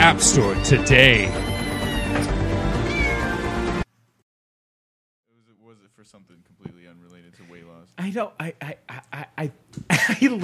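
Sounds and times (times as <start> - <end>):
speech: 0.0 - 1.5, 8.0 - 10.4
cat meowing: 0.4 - 3.6.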